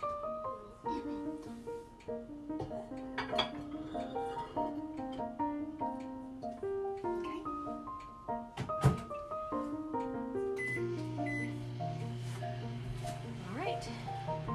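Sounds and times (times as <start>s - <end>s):
faint tonal sound: 0.0s - 14.5s
dish clattering as it is put back into a microwave: 3.2s - 5.3s
microwave oven humming as it runs: 7.0s - 14.5s
microwave door shutting: 8.6s - 9.2s.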